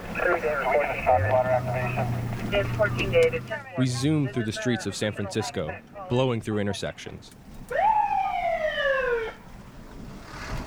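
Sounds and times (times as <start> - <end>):
low squad car engine hum: 0.0 - 4.0, 7.2 - 10.6
voice announcing a gunshot alert over a police radio in a squad car: 0.0 - 6.1
speech: 0.4 - 7.4.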